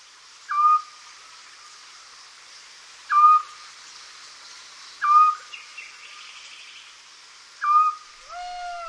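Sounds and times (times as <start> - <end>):
faint hiss: 0.0 - 8.8
small scops owl giving whistled calls in a poplar tree: 0.5 - 0.9, 3.1 - 3.5, 5.0 - 5.4, 7.6 - 8.8.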